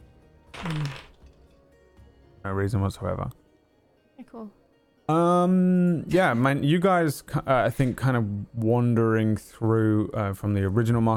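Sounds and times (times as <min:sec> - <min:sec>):
speech: 0:00.6 - 0:01.0, 0:02.4 - 0:03.4, 0:04.3 - 0:11.1
dice clattering across a hard surface: 0:00.6 - 0:01.4.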